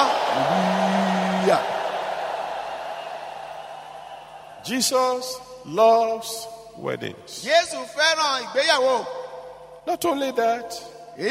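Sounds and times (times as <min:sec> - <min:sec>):
audience shouting hallelujah together: 0:00.0 - 0:04.6
speech: 0:01.5 - 0:01.7, 0:04.6 - 0:09.2, 0:09.8 - 0:11.2.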